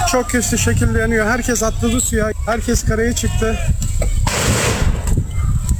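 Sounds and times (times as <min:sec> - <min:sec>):
speech: 0:00.1 - 0:04.1
explosions from a burning tour boat: 0:04.3 - 0:05.7.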